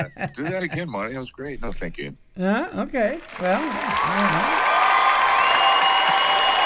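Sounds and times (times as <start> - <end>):
speech: 0.0 - 4.8
audience applause: 3.0 - 6.6.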